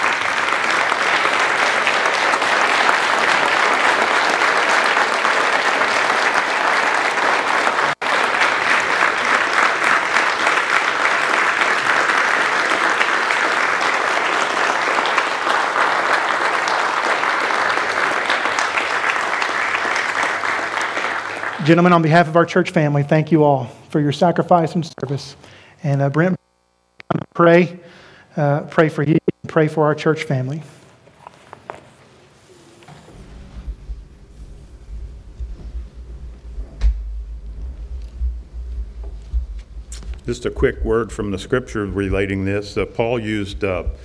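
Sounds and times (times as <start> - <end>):
large crowd applauding: 0.0 - 22.4, 36.9 - 44.0
speech: 21.7 - 26.4, 27.4 - 30.8, 40.3 - 44.0.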